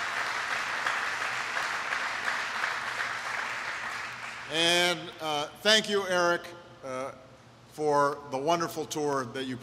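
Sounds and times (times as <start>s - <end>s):
sizable crowd applauding: 0.0s - 4.6s
speech: 4.5s - 7.2s, 7.8s - 9.6s.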